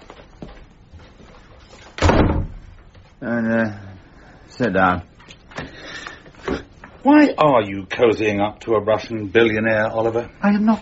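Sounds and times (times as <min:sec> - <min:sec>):
door shutting firmly with a loud thud: 0:02.0 - 0:02.8
speech: 0:03.2 - 0:03.8, 0:04.6 - 0:05.1, 0:07.0 - 0:10.8.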